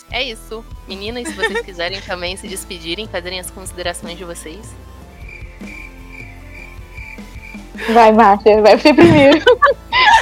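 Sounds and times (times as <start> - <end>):
speech: 0.1 - 4.9, 7.8 - 9.8
laughter: 1.2 - 2.1, 7.8 - 10.2
crickets chirping in a high repeating trill: 5.1 - 7.8.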